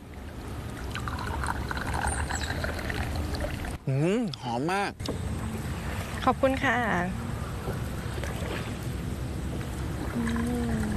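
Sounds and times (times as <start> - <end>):
low rumbling motorboat engine-like background: 0.0 - 10.9
tea pouring into a cup aboard a motorboat on a canal: 0.8 - 3.7
speech: 3.9 - 5.3, 6.2 - 7.9, 10.2 - 10.8.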